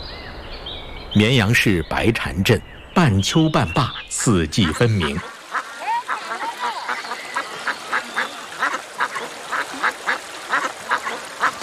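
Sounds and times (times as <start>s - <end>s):
speech: 1.2s - 5.3s
flock of ducks quacking: 3.8s - 11.6s.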